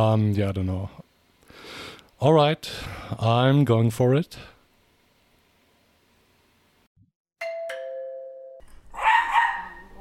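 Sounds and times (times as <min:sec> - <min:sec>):
speech: 0:00.0 - 0:01.0, 0:01.6 - 0:04.5
two-tone doorbell chime at a remote house: 0:07.4 - 0:08.6
dog barking loudly: 0:08.9 - 0:09.9.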